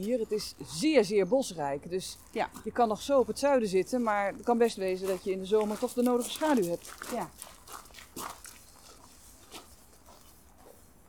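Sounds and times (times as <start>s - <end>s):
speech: 0.0s - 8.3s
soft crunchy footsteps on a wood chip path: 2.1s - 11.0s.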